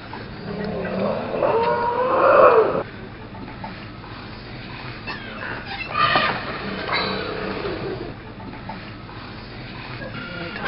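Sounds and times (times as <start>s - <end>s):
elephant giving a loud harmonic wavering cry: 0.3s - 2.8s, 5.1s - 8.2s.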